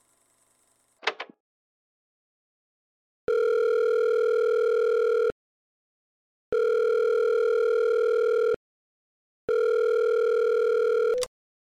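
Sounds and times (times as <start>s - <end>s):
unanswered phone call ringing tones: 3.3s - 5.4s, 6.5s - 8.6s, 9.5s - 11.3s.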